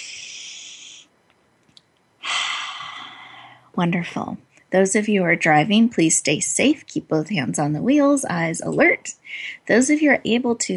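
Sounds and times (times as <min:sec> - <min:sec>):
person taking a deep breath during a guided meditation: 0:00.0 - 0:01.1, 0:02.2 - 0:03.7
speech: 0:03.8 - 0:10.7.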